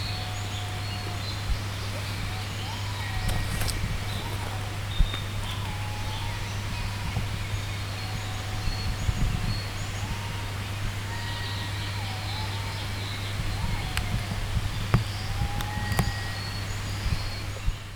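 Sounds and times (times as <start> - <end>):
white-bellied green pigeon calling on Bodaiji mountain in Niigata: 0.1 - 17.7.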